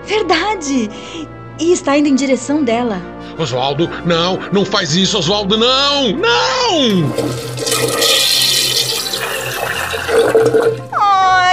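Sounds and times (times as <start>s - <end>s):
speech: 0.1s - 8.3s
toilet flushing: 6.9s - 11.0s.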